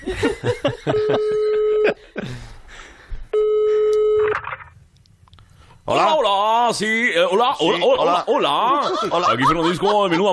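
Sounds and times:
speech: 0:00.0 - 0:01.4, 0:06.7 - 0:10.3
laughter: 0:00.0 - 0:02.4, 0:07.5 - 0:10.3
harmonic telephone line tone: 0:00.9 - 0:02.0, 0:03.4 - 0:04.6
phone dialing tones: 0:03.4 - 0:04.7.

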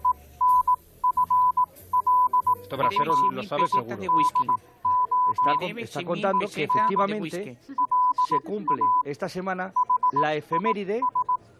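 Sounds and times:
high-pitched Morse code beeps: 0:00.0 - 0:09.1, 0:09.8 - 0:11.5
speech: 0:02.7 - 0:11.2.

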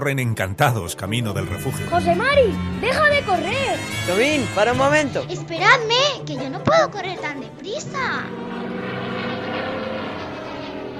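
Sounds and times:
speech: 0:00.0 - 0:08.5
military propeller aircraft engines droning overhead: 0:00.0 - 0:10.9.

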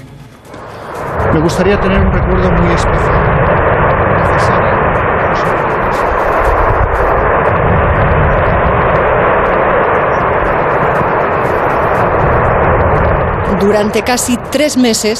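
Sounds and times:
erupting volcano rumbling roar on La Palma in the Canary Islands: 0:00.0 - 0:15.1
faint crackling bursts: 0:00.0 - 0:15.1
speech: 0:01.4 - 0:03.4, 0:13.6 - 0:15.1.

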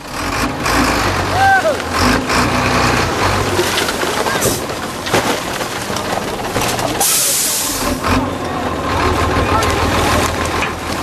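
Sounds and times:
large garbage truck engine drone: 0:00.0 - 0:11.0
faint indistinct voices: 0:05.9 - 0:11.0
hissing air burst from garbage truck: 0:07.0 - 0:07.9.

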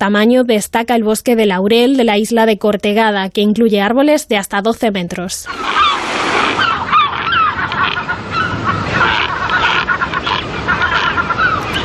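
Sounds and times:
speech: 0:00.0 - 0:06.6
colonies of European shags and yellow-legged gulls calling on islands of a national park: 0:05.4 - 0:11.8
surf: 0:05.5 - 0:11.8.

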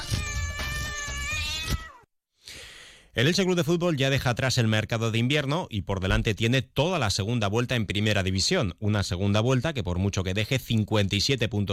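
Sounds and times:
cat meowing: 0:00.0 - 0:02.0
speech: 0:03.2 - 0:11.7.

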